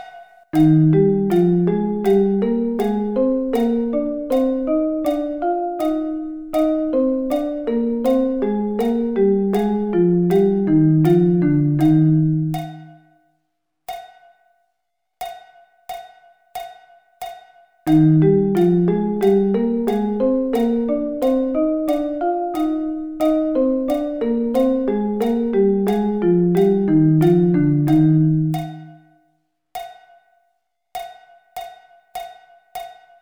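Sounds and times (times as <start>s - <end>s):
musical interval of thirds: 0.5s - 13.0s, 17.9s - 28.9s.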